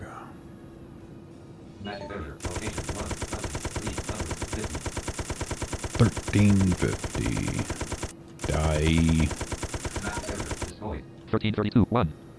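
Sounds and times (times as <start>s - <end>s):
speech: 1.8s - 2.8s, 6.0s - 7.9s, 8.5s - 9.5s, 11.3s - 12.2s
rapid automatic gunfire from a video game: 2.4s - 10.7s.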